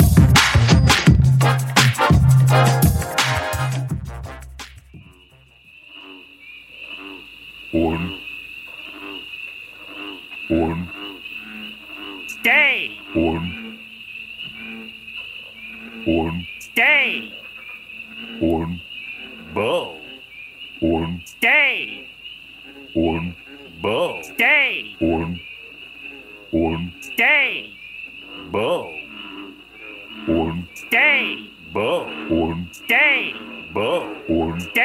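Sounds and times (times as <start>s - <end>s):
chorus of frogs croaking: 0.0s - 1.2s, 4.5s - 34.8s
steady high insect-like trill: 0.0s - 5.5s.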